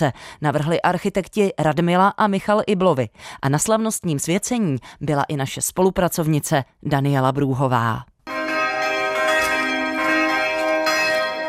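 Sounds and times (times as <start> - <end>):
speech: 0.0 - 8.1
new church bells ringing in a sustained peal: 8.3 - 11.4.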